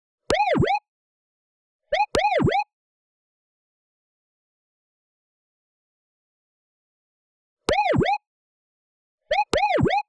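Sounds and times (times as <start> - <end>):
siren sound effect: 0.3 - 0.8, 2.0 - 2.7, 9.6 - 10.0.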